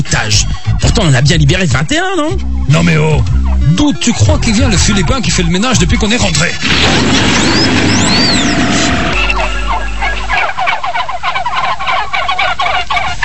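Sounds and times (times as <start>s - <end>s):
turkeys gobbling in a warbling chorus: 0.0s - 13.2s
speech: 0.2s - 8.6s
low rumbling noise: 2.4s - 10.8s.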